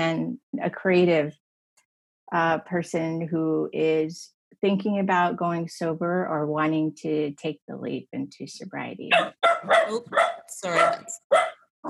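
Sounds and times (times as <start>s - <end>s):
speech: 0.0s - 1.4s, 2.3s - 11.8s
dog barking: 9.1s - 11.8s.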